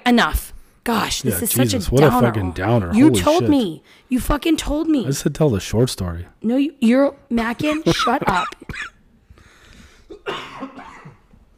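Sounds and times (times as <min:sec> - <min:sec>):
speech: 0:00.1 - 0:08.9, 0:10.2 - 0:10.9
harsh raspy coughing fit with hacking: 0:07.8 - 0:09.0, 0:10.1 - 0:11.3.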